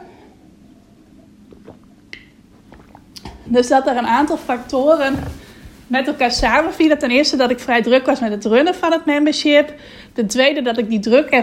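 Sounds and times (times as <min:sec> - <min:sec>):
person sipping water: 0:01.4 - 0:03.5
soft slurping and swallowing clicks: 0:01.5 - 0:03.5
speech: 0:03.5 - 0:11.4.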